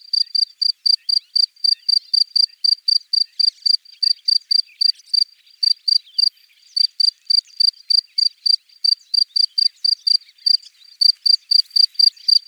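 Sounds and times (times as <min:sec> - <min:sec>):
Gryllus bimaculatus cricket: 0:00.0 - 0:12.4.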